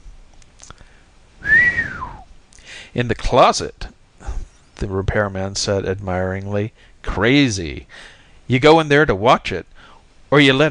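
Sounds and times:
bearded repairman whistling: 1.4 - 2.3
speech: 2.9 - 3.9, 4.8 - 9.7, 10.3 - 10.6.

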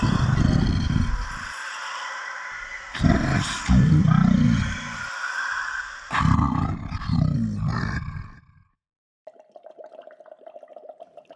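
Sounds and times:
loud rough monster scream with deep rumbling roar: 0.0 - 8.4
steady bubbling gurgling watery sound: 9.2 - 11.3.

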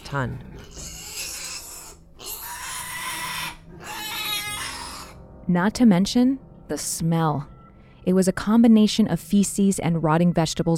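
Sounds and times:
several pigs grunting and squealing: 0.0 - 5.2
speech: 0.1 - 0.9, 5.5 - 10.7.

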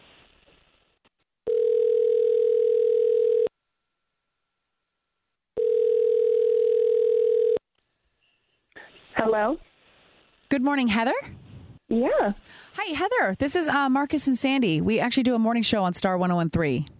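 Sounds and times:
long ringback tones on a phone line: 1.5 - 3.5, 5.6 - 7.6
speech: 9.3 - 9.7, 10.6 - 16.9.

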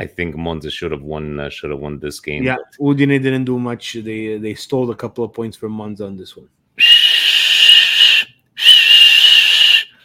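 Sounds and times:
speech: 0.0 - 6.9
shrill electronic whistle blasts: 6.8 - 9.9.

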